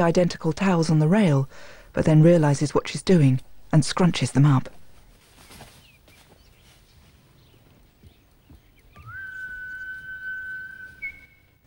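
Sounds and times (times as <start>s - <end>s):
speech: 0.0s - 4.8s
person whistling: 9.0s - 11.6s.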